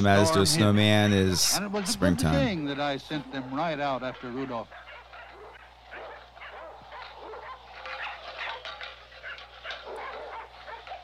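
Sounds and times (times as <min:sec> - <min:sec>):
speech: 0:00.0 - 0:04.8
faint steady hum: 0:00.0 - 0:11.0
small dog barking and yipping: 0:04.2 - 0:11.0.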